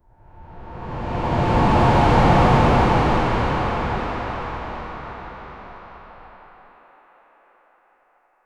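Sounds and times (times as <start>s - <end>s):
soft airy whoosh with a high end: 0.3s - 6.6s.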